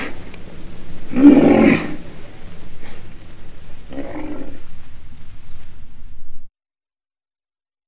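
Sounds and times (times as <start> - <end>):
low rumbling background: 0.0 - 6.5
black rhinoceros harsh raspy growls: 1.1 - 2.1, 3.9 - 4.7.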